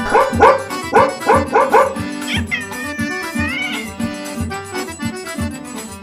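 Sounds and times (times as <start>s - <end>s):
puppies barking: 0.0s - 4.1s
puppies whining: 2.2s - 4.2s.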